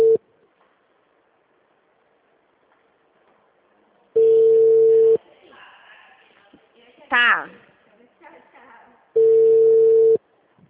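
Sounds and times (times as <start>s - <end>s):
phone call tone while dialing a voicemail line: 0.0s - 0.2s, 4.2s - 5.2s, 9.2s - 10.2s
speech: 7.2s - 7.7s.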